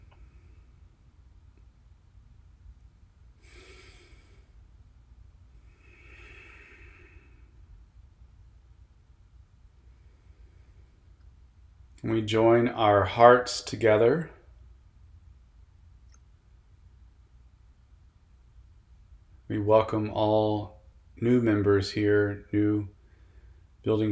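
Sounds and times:
low steady hiss: 0.0s - 24.1s
group taking deep breaths: 3.4s - 4.6s, 5.6s - 7.6s
speech: 12.0s - 14.4s, 19.6s - 23.0s, 23.8s - 24.1s.

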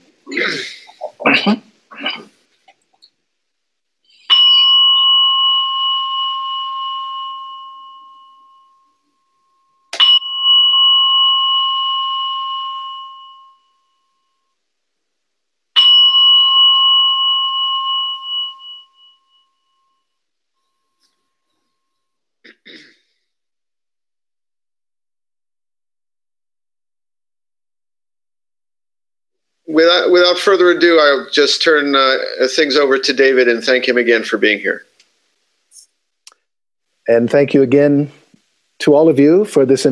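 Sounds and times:
speech: 0.4s - 0.8s, 1.4s - 1.6s, 29.7s - 34.9s, 37.1s - 38.2s, 38.8s - 39.8s
bell struck to start a session: 4.3s - 14.5s, 15.8s - 22.2s.

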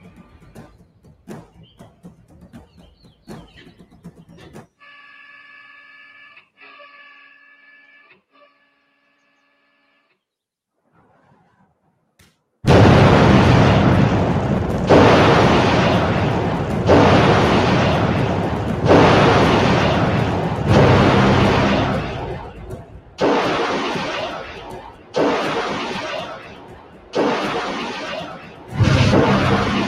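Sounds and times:
Patriot missile launches from shipping container: 12.7s - 29.8s.

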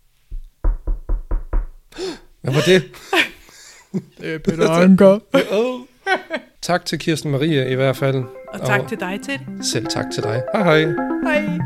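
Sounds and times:
firm hollow knocking: 0.3s - 1.9s
speech: 2.0s - 3.3s, 3.9s - 11.6s
laughter: 2.5s - 6.5s.

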